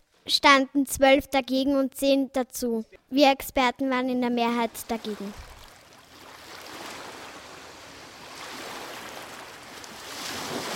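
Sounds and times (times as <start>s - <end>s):
speech: 0.2s - 5.5s
rough sea waves surging and washing: 4.7s - 10.7s.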